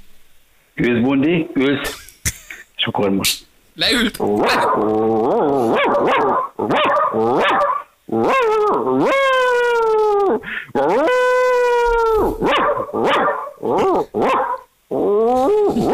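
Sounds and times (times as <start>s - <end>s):
speech: 0.8s - 2.0s, 2.8s - 9.4s, 10.3s - 11.3s, 12.2s - 15.9s
dog drawn-out whining howls: 4.5s - 15.9s
dog barking: 5.7s - 8.5s, 12.4s - 14.7s.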